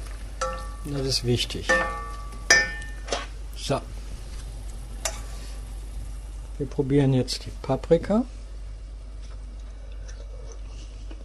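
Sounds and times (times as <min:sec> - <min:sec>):
food searing in hot vegetable oil in a hot pan: 0:00.0 - 0:06.6
speech: 0:00.8 - 0:02.0, 0:03.7 - 0:04.0, 0:06.6 - 0:08.4.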